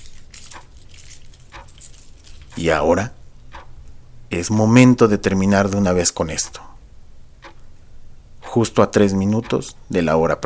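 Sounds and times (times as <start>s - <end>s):
keys jangling as pulled from a lined leather purse: 0.0s - 2.6s
low rumble: 0.0s - 10.4s
speech: 2.6s - 3.2s, 4.3s - 6.7s, 8.5s - 10.4s.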